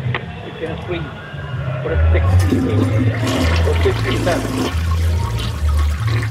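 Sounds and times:
faint voices: 0.0 - 5.9
speech: 0.6 - 1.2, 1.8 - 4.9
toilet flushing with sheets in it: 2.3 - 6.3.

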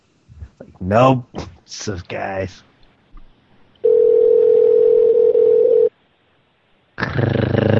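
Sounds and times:
speech: 0.8 - 2.7
telephone ringing tone: 3.8 - 5.9.

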